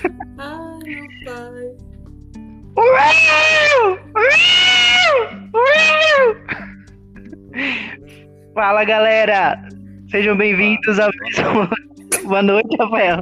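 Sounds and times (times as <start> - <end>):
speech: 0.4 - 2.0, 8.6 - 13.1
person screaming imitating a frantic call: 2.8 - 6.4
strained cries: 2.8 - 6.8
laughter: 11.2 - 12.4.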